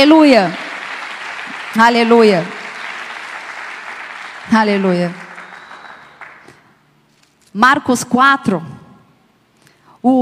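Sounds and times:
speech: 0.0s - 0.6s, 1.7s - 2.6s, 4.5s - 5.2s, 7.6s - 8.7s
audience applause: 0.5s - 6.7s.

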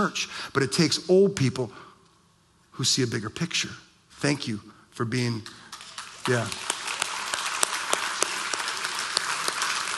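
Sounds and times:
speech: 0.0s - 1.9s, 2.8s - 5.6s, 6.3s - 6.7s
sharp individual claps: 5.4s - 9.9s
church audience applause: 5.8s - 9.9s.

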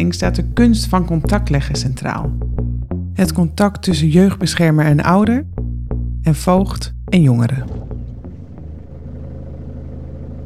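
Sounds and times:
speech: 0.0s - 2.5s, 3.2s - 5.5s, 6.2s - 7.8s
low engine rumble inside a moving car: 6.3s - 10.4s
brief clicks or bumps: 7.6s - 8.8s.

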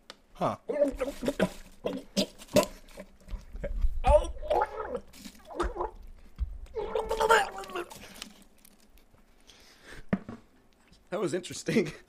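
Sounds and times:
speech: 0.4s - 2.0s, 11.2s - 12.0s
man gulping water from a bottle: 1.1s - 8.3s.

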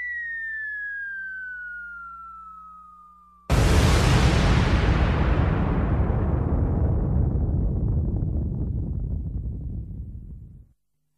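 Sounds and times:
pyrotechnic explosion blowing up wrestling ring: 3.5s - 10.7s.

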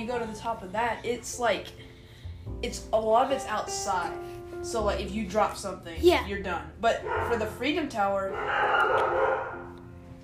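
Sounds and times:
speech: 0.0s - 1.9s, 2.5s - 9.7s
dog barking: 7.0s - 7.6s, 8.3s - 9.8s.

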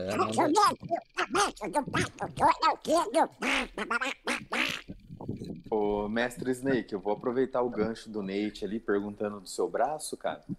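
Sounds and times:
raspy quacking cartoon duck voice impression: 0.0s - 4.8s
speech: 0.0s - 4.8s, 5.4s - 10.5s.

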